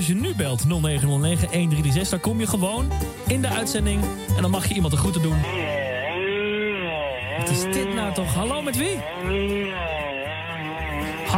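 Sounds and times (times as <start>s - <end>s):
speech: 0.0s - 5.8s, 7.4s - 10.0s
chainsaw engine snarling through a caller's telephone line: 0.4s - 11.3s.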